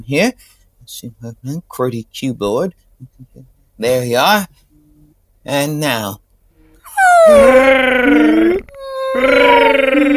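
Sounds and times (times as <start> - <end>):
speech: 0.0 - 4.6, 5.4 - 6.2, 6.9 - 10.1
baby sperm whale moaning calls: 6.9 - 10.1.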